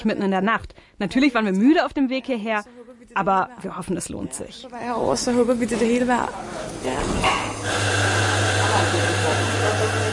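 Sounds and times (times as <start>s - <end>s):
speech: 0.0s - 8.1s
espresso machine pump humming and hissing in a foyer: 7.3s - 10.1s.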